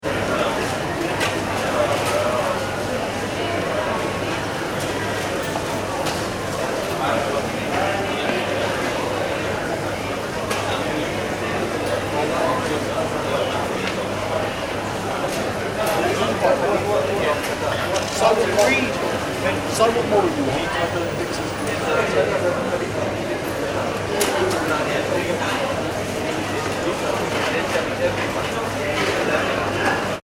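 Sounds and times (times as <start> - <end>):
departure lounge ambience at London Heathrow Airport: 0.0 - 30.2.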